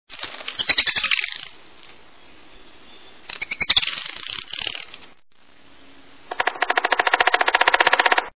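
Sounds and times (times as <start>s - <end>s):
black-backed woodpecker: 0.4s - 1.6s, 3.2s - 4.9s, 6.3s - 8.3s.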